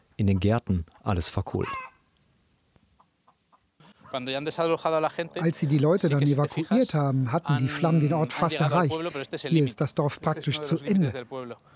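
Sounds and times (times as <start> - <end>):
speech: 0.2 - 1.9, 4.1 - 11.7
chicken clucking: 1.6 - 1.9
chicken squawk: 1.6 - 2.1.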